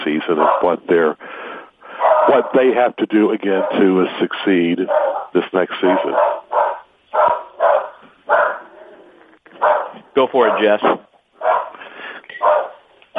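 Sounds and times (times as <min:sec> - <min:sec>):
speech: 0:00.1 - 0:01.3, 0:02.3 - 0:06.4, 0:10.3 - 0:11.1
small dog barking: 0:00.4 - 0:00.8, 0:02.0 - 0:02.6, 0:03.6 - 0:03.8, 0:04.9 - 0:08.8, 0:09.6 - 0:10.8, 0:11.4 - 0:11.8, 0:12.4 - 0:13.1.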